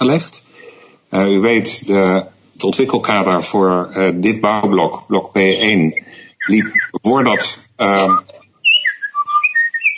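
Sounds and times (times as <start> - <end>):
speech: 0.0 - 0.5, 1.1 - 8.4
birdsong played back on a device during a municipal council session: 2.2 - 9.9.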